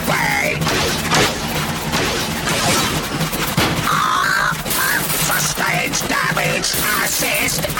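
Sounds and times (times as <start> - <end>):
crashing impacts in a video game battle: 0.6 - 5.8
gunfire in a video game battle: 0.6 - 7.7.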